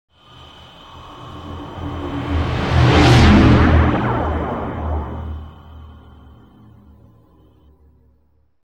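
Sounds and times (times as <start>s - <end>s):
runabout boat flyby: 0.3s - 6.4s.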